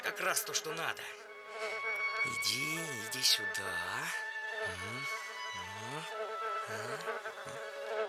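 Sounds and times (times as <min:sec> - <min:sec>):
fly buzzing: 0:00.0 - 0:08.0
speech: 0:00.1 - 0:08.0.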